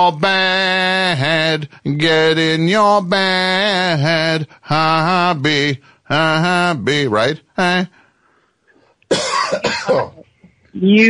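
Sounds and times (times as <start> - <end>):
speech: 0.0 - 8.0, 9.1 - 10.2, 10.8 - 11.0
harsh raspy coughing fit: 9.1 - 10.3.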